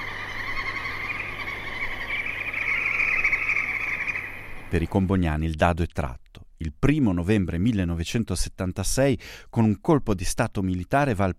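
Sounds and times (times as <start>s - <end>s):
tropical birds chirring and calling before a thunderstorm: 0.0s - 4.7s
speech: 4.7s - 11.3s.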